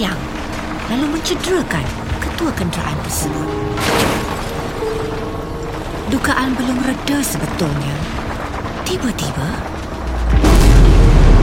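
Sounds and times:
speech: 0:00.9 - 0:04.4, 0:06.1 - 0:08.2, 0:08.9 - 0:09.7
loud rocket explosion behind a military vehicle: 0:10.1 - 0:11.4.

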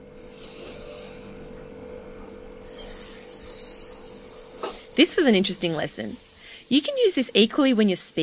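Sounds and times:
breath pushed through the teeth hissing: 0:00.3 - 0:01.3, 0:02.6 - 0:04.0, 0:06.2 - 0:06.8
speech: 0:05.0 - 0:08.2.

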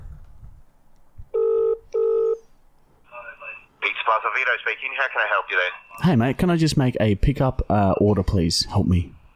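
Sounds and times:
phone line ringing back: 0:01.3 - 0:02.4
speech: 0:04.4 - 0:09.2.

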